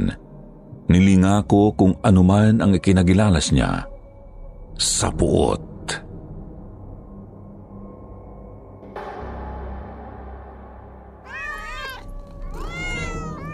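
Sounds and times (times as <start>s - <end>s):
speech: 0.0s - 0.2s, 0.9s - 3.9s, 4.8s - 6.0s
two cats meowing: 11.3s - 13.5s.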